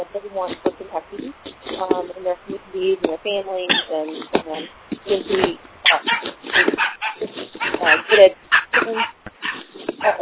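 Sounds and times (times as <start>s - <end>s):
speech: 0.1s - 6.9s, 7.6s - 9.1s
dog barking over a phone line during a group conference call: 5.8s - 10.1s.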